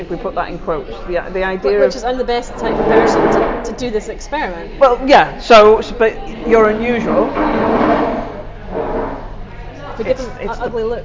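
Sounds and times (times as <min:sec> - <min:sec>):
speech: 0:00.0 - 0:08.2, 0:10.0 - 0:11.0
chairs dragged back into place across a floor: 0:01.8 - 0:04.1, 0:06.2 - 0:09.6.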